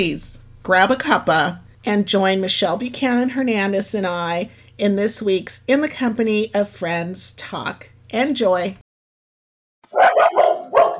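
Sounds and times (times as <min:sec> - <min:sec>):
speech: 0:00.0 - 0:08.8
puppies barking: 0:09.9 - 0:10.9.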